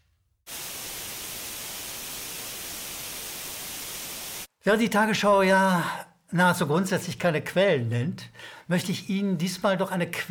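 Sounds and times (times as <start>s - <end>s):
white noise static: 0.5s - 4.5s
speech: 4.6s - 10.2s.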